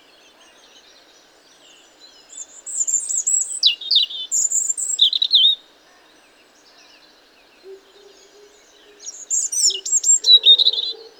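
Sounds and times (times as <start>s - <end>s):
European robin Erithacus rubecula singing: 1.8s - 5.6s, 7.7s - 11.1s.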